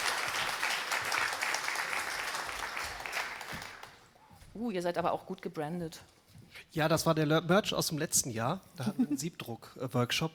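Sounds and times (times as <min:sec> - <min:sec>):
audience applause: 0:00.0 - 0:04.1
speech: 0:04.6 - 0:06.2, 0:06.8 - 0:10.3.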